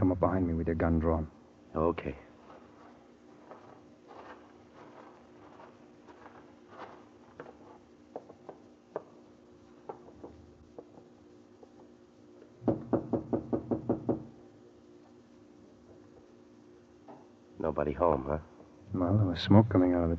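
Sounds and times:
speech: 0:00.1 - 0:02.3, 0:17.8 - 0:20.1
faint scattered taps: 0:02.4 - 0:14.3
knocking on a wooden door: 0:12.6 - 0:14.3.

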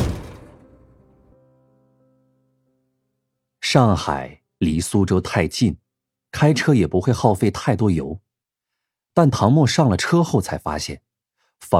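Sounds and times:
house door opened as someone leaves: 0:00.0 - 0:01.2
speech: 0:03.7 - 0:08.2, 0:09.2 - 0:11.7.

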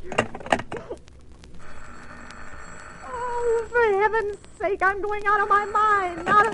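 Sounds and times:
telephone bell ringing: 0:01.6 - 0:03.8, 0:05.4 - 0:06.5
speech: 0:04.1 - 0:06.5.

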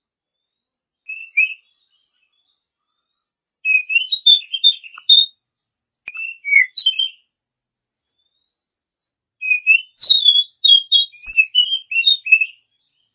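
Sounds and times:
Oriental magpie-robin singing with whistled notes and chattering phrases: 0:01.0 - 0:03.1, 0:03.7 - 0:05.3, 0:06.1 - 0:07.2, 0:07.9 - 0:13.1.

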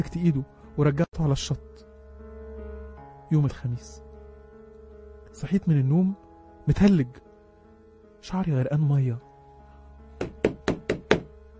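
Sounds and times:
speech: 0:00.0 - 0:01.9, 0:03.3 - 0:04.0, 0:05.4 - 0:07.2, 0:08.2 - 0:09.3
knocking on a room door: 0:10.2 - 0:11.4.

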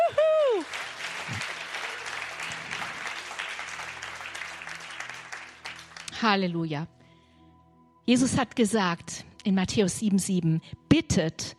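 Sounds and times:
church service audience applause: 0:00.0 - 0:06.1
speech: 0:06.2 - 0:07.0, 0:08.1 - 0:11.5.

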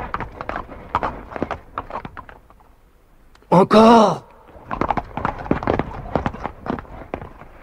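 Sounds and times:
horse hooves clip-clopping sound effect: 0:00.0 - 0:03.0, 0:04.5 - 0:07.6
speech: 0:03.6 - 0:04.2.

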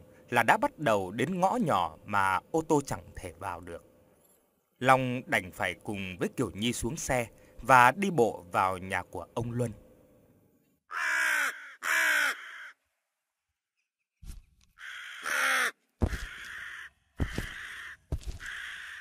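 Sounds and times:
speech: 0:00.3 - 0:03.9, 0:04.8 - 0:09.8
crow on a wooden post cawing harshly: 0:10.9 - 0:12.8, 0:14.8 - 0:18.9.

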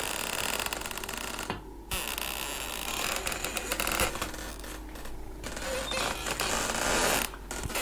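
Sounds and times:
kitchen door hinges creaking as the door opens: 0:00.0 - 0:07.8.

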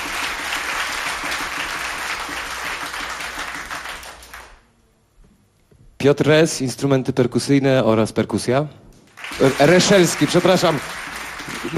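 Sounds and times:
audience applause at a live jazz performance: 0:00.0 - 0:04.6, 0:09.1 - 0:11.7
speech: 0:06.0 - 0:08.8, 0:09.4 - 0:11.7.

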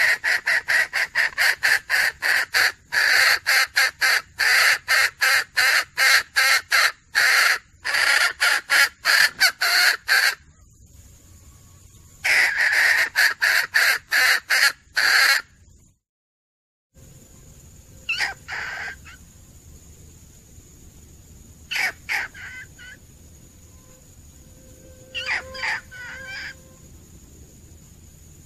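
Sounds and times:
female junglefowl giving harsh clucking notes: 0:00.0 - 0:10.5, 0:12.2 - 0:15.5, 0:18.1 - 0:19.2, 0:21.7 - 0:23.0, 0:25.1 - 0:26.6
steady high whine: 0:17.0 - 0:28.4.

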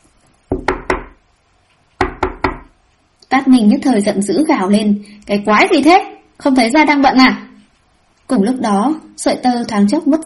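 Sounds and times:
knocking on a door from outside: 0:00.5 - 0:01.2, 0:02.0 - 0:02.8
speech: 0:03.4 - 0:07.4, 0:08.3 - 0:10.2.

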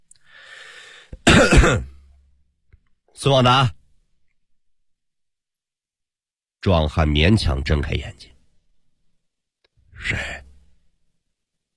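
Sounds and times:
man clearing his throat: 0:01.2 - 0:02.0
speech: 0:01.6 - 0:01.9, 0:03.2 - 0:03.8, 0:06.6 - 0:08.3, 0:10.0 - 0:10.4.

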